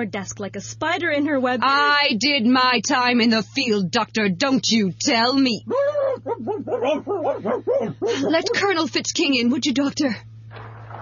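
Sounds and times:
speech: 0:00.0 - 0:10.3
low steady hum: 0:00.0 - 0:11.0
colonel imitating dog barks and yelps: 0:05.6 - 0:08.6.

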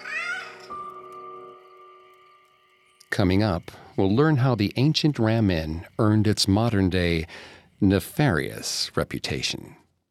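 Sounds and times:
cat yowling: 0:00.0 - 0:00.7
speech: 0:03.2 - 0:09.8.

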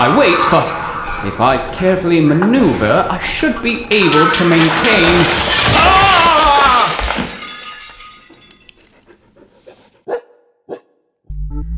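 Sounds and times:
speech: 0:00.0 - 0:06.1
body crashing through a glass roof: 0:02.6 - 0:09.3.

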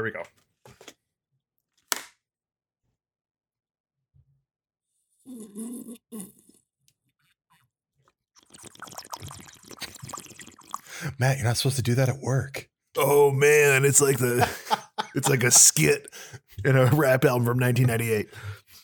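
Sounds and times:
speech: 0:00.0 - 0:00.5, 0:11.2 - 0:18.6
person loudly slurping a drink: 0:08.4 - 0:11.2
laughter: 0:13.0 - 0:18.2.

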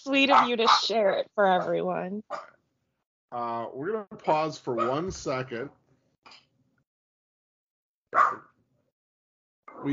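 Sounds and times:
speech: 0:00.0 - 0:02.5, 0:03.3 - 0:06.4, 0:08.1 - 0:08.5, 0:09.8 - 0:09.9
dogs barking at a mail delivery: 0:00.2 - 0:01.0, 0:01.6 - 0:02.6, 0:04.7 - 0:05.1, 0:08.1 - 0:08.6.

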